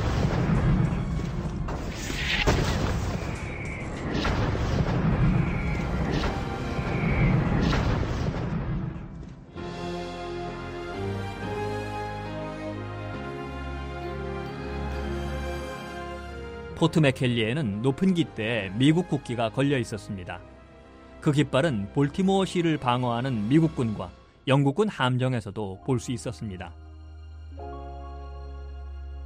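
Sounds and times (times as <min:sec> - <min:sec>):
naval cannon bombardment: 0:00.0 - 0:01.8, 0:02.4 - 0:09.2
exploding shells: 0:00.0 - 0:09.4
orchestral music: 0:00.0 - 0:29.2
whistling rounds: 0:02.0 - 0:04.5, 0:05.2 - 0:07.6
speech: 0:16.8 - 0:20.5, 0:21.2 - 0:26.8.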